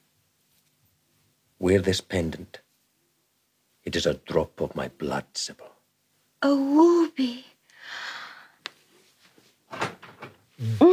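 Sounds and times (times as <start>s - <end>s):
speech: 1.6s - 2.6s, 3.9s - 5.8s, 6.4s - 8.0s, 10.6s - 10.9s
door shutting with latch click: 9.7s - 10.5s.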